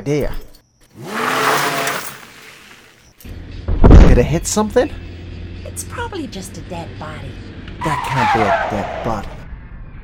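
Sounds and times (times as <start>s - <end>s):
speech: 0.0s - 1.1s, 4.2s - 5.0s, 5.7s - 9.4s
car engine revving and driving off: 1.0s - 2.9s.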